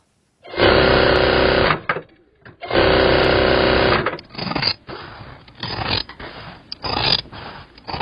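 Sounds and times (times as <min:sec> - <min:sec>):
sewing machine whirring and stitching in a hanbok shop: 0:00.5 - 0:02.0, 0:02.6 - 0:04.2
mechanical rattles and scraping noises: 0:00.6 - 0:08.0.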